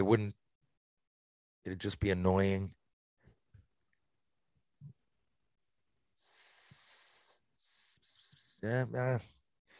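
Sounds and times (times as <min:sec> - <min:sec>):
speech: 0:00.0 - 0:00.4, 0:01.6 - 0:02.8, 0:08.6 - 0:09.4
person imitating a snake hiss: 0:06.2 - 0:08.7.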